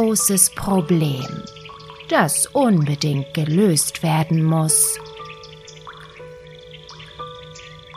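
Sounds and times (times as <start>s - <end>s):
speech: 0.0s - 5.1s
water dripping into a house: 0.0s - 7.9s.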